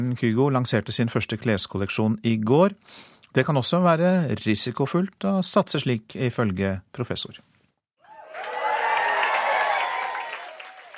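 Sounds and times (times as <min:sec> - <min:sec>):
speech: 0:00.0 - 0:07.5
celebrity audience applause and cheering at a fashion show in Oslo: 0:08.0 - 0:10.9.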